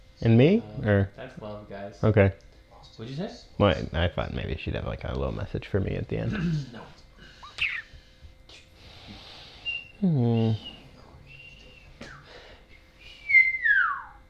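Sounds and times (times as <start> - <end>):
speech: 0.2 - 7.0, 10.0 - 10.7
airy inhaled whistling: 7.4 - 7.9, 9.4 - 12.4, 13.0 - 14.2.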